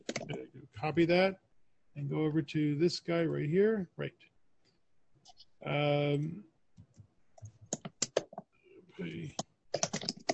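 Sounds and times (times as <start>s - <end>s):
computer keyboard clicks: 0.0s - 0.4s, 6.8s - 8.5s, 9.1s - 10.3s
speech: 0.8s - 1.4s, 2.0s - 4.3s, 5.2s - 6.5s, 9.0s - 9.4s.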